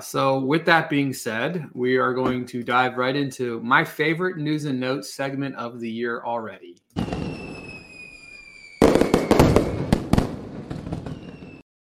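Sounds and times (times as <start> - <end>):
speech: 0.0 - 7.1
hiss with high whistles: 7.0 - 10.0
fireworks crackling and banging: 7.0 - 11.6.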